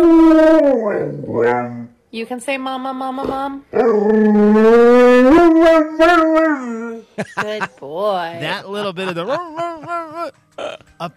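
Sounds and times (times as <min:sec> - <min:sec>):
dog howling: 0:00.0 - 0:01.9, 0:03.7 - 0:07.0
speech: 0:00.8 - 0:11.1
laughter: 0:07.2 - 0:07.8, 0:08.4 - 0:10.3.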